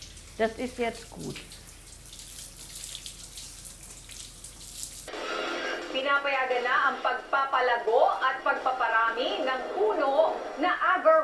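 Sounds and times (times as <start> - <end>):
water running from a tap: 0.0 - 5.2
speech: 0.4 - 1.6, 6.0 - 11.2.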